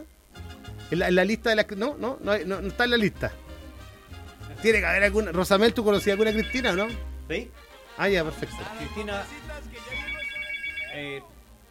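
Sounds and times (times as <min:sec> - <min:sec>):
speech: 0:00.9 - 0:03.4, 0:04.6 - 0:09.4, 0:11.0 - 0:11.3
telephone ringing at a radio station with trilling electronic tone: 0:05.9 - 0:07.0, 0:09.8 - 0:11.2.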